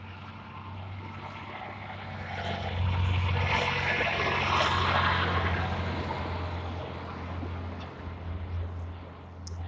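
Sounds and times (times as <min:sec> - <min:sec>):
heavy truck rumbling past: 0:00.0 - 0:09.6.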